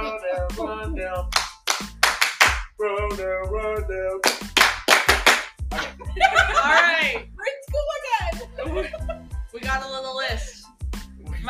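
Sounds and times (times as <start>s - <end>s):
sharp rhythmic hand claps: 0.0s - 2.7s, 4.2s - 7.2s
speech: 0.5s - 2.0s, 2.8s - 4.6s, 5.7s - 7.6s, 8.6s - 10.6s
laughter: 5.7s - 7.3s, 8.2s - 9.3s.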